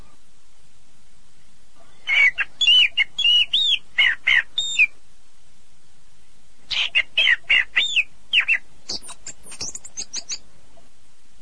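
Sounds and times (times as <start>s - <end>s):
birds giving clear whistled notes: 2.1s - 5.0s, 6.7s - 10.4s.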